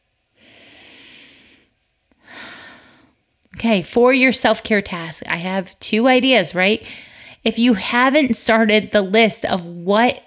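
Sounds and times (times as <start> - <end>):
deep breathing: 0.4 - 3.2, 6.8 - 7.4
speech: 3.6 - 10.2.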